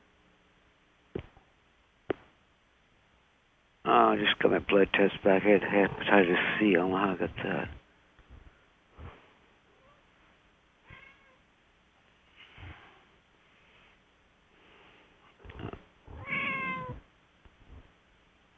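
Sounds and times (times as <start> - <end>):
speech: 3.9 - 7.8
cat meowing: 10.8 - 11.4, 15.5 - 17.0.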